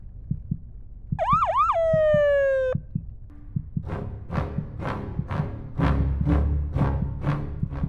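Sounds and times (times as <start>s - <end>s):
heartbeat-like thumping: 0.0s - 7.8s
police siren whooping: 1.2s - 2.8s.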